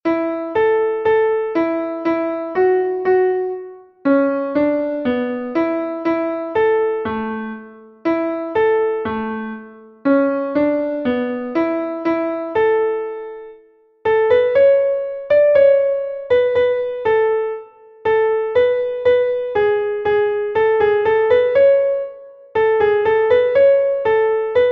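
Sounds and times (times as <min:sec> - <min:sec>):
piano canon: 0:00.0 - 0:24.6.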